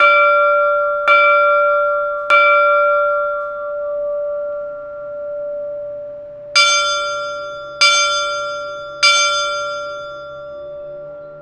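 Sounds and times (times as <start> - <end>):
internal and external clappers: 0.0 - 3.9, 6.6 - 11.4.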